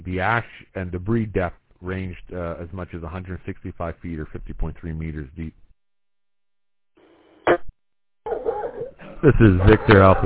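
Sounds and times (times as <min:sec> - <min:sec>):
speech: 0:00.0 - 0:05.6, 0:09.2 - 0:10.2
dog longer whining yelp: 0:08.3 - 0:09.0
laughter: 0:08.3 - 0:10.2.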